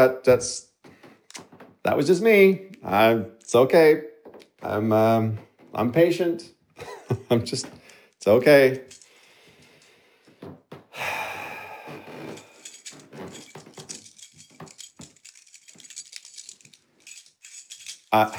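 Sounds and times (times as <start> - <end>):
speech: 0.0 - 0.7, 1.4 - 9.0, 18.1 - 18.3
keys jingling: 6.8 - 10.0, 11.9 - 18.3.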